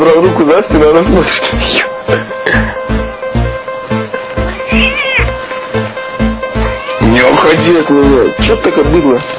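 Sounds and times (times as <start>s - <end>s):
speech: 0.0s - 2.8s, 7.5s - 9.3s
steady rhythmic thumping: 0.0s - 9.3s
cat meowing: 4.4s - 5.4s, 6.5s - 7.6s.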